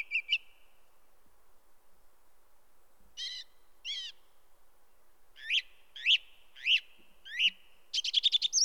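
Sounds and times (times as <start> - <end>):
song thrush song: 0.0 - 0.7, 3.2 - 4.3, 5.4 - 8.6.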